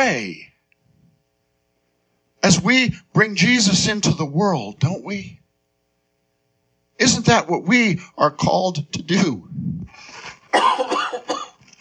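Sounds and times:
speech: 0.0 - 0.5, 2.4 - 5.4, 7.0 - 11.0
loud rough breathy cough: 10.5 - 11.6.

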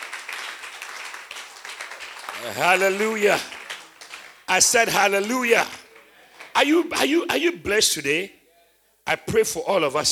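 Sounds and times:
church congregation clapping: 0.0 - 6.8
speech: 2.4 - 3.6, 4.5 - 5.8, 6.6 - 8.4, 9.1 - 10.1.

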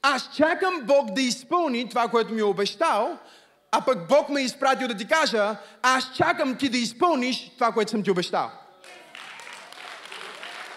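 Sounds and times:
speech: 0.1 - 9.0
crowd applauding in a large room: 8.8 - 10.7.

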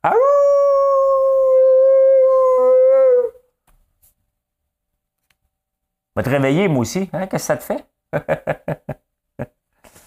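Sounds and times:
small dog howling: 0.0 - 3.4
speech: 6.2 - 9.0.

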